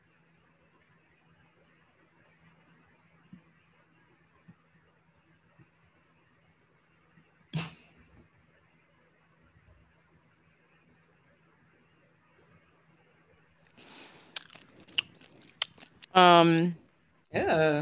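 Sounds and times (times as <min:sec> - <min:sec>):
crunchy chewing of food: 0:14.3 - 0:16.2
mouth clicks: 0:14.3 - 0:16.2
speech: 0:16.2 - 0:17.8.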